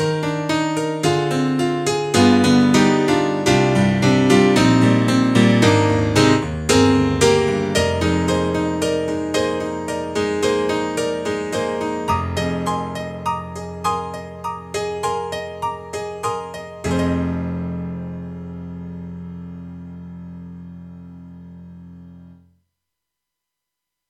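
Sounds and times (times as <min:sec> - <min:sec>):
synthesizer rack dance piano: 0:00.2 - 0:19.3.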